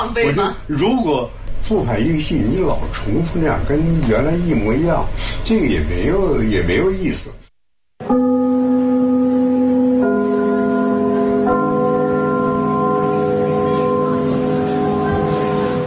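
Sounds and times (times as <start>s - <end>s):
speech: 0.0s - 7.5s, 8.1s - 8.3s
theatre opening bell ringing: 8.0s - 15.8s.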